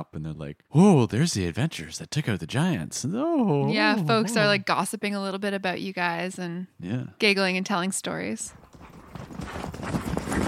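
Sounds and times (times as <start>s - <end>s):
speech: 0.1s - 8.6s
horse hooves clip-clopping at a walk with riders: 8.5s - 10.4s.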